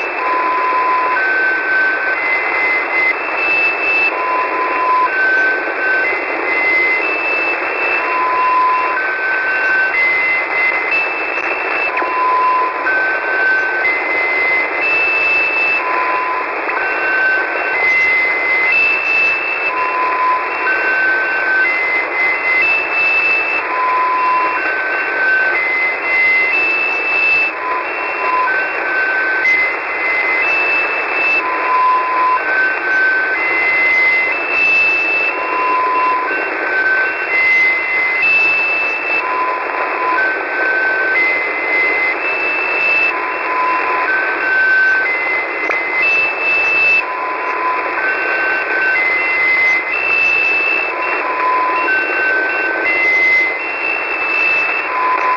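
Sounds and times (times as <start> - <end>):
rising tones of a 7506 kHz South African Navy test transmission: 0.0 - 55.3.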